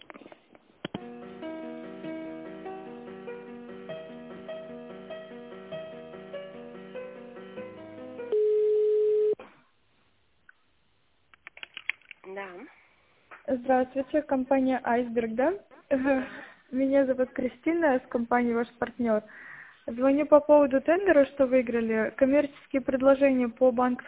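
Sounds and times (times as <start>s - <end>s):
long steady telephone-line tone: 8.3s - 9.4s
speech: 13.5s - 24.0s.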